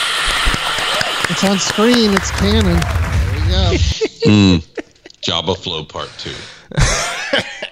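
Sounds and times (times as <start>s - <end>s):
laughter: 0.2s - 5.3s, 6.7s - 7.7s
speech: 1.4s - 4.7s, 5.3s - 7.7s
person coughing: 3.7s - 4.9s.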